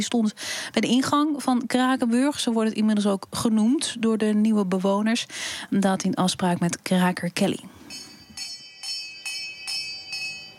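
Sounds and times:
speech: 0.0s - 8.0s
homemade doorbell chiming at a squatters' camp: 7.9s - 10.5s.

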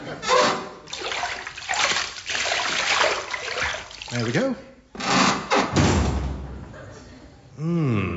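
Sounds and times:
people splashing into an isolation tank of salty water: 0.9s - 4.4s
speech: 4.1s - 4.7s, 7.6s - 8.1s
heavy isolation tank lid slamming shut with a booming thud: 5.6s - 6.5s.

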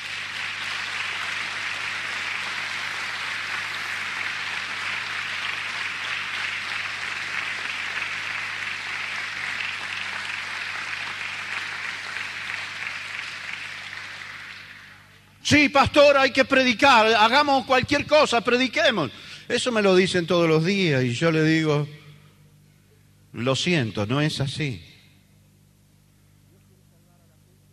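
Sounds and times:
congregation applause in a church: 0.0s - 15.4s
speech: 15.5s - 22.0s, 23.4s - 24.9s.

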